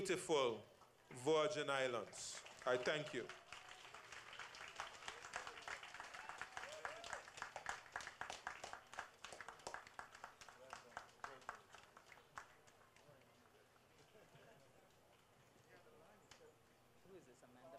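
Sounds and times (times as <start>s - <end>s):
speech: 0.0s - 3.4s
crowd applauding after a speech: 1.8s - 14.7s
scattered voices and cheers: 4.8s - 7.3s.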